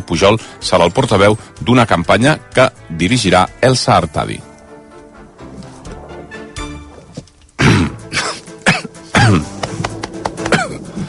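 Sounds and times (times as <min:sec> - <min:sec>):
speech: 0:00.0 - 0:04.5
harsh throaty raspy coughs: 0:07.6 - 0:09.6, 0:10.4 - 0:10.9.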